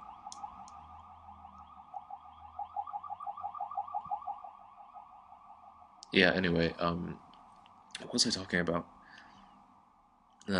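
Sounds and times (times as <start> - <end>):
ambulance siren wailing: 0.0 - 7.0
speech: 6.1 - 7.2, 8.1 - 9.0.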